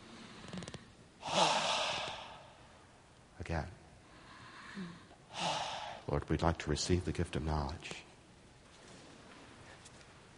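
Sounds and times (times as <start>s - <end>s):
deep breath during a prayer session: 0.0s - 2.8s, 4.0s - 6.1s
speech: 3.5s - 3.8s, 4.8s - 8.1s.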